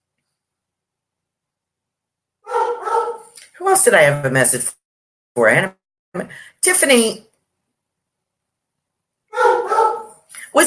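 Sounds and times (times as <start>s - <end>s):
dog giving a long whiny howling bark: 2.4s - 3.4s, 9.3s - 10.3s
speech: 3.6s - 4.8s, 5.4s - 7.3s.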